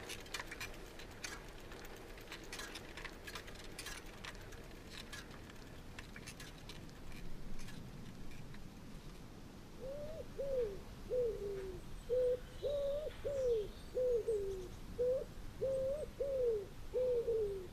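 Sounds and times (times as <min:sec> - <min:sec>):
birds cooing in the woods: 0:09.8 - 0:17.7.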